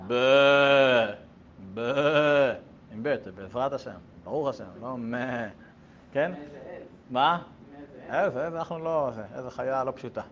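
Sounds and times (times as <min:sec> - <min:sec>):
human voice imitating a sheep's bleat: 0:00.0 - 0:02.7
speech: 0:00.1 - 0:01.2, 0:03.2 - 0:10.2.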